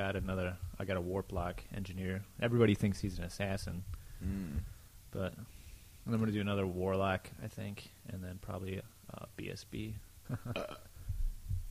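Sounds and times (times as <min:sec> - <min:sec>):
speech: 0:00.0 - 0:10.9
throaty burp: 0:04.2 - 0:04.7, 0:10.5 - 0:10.9.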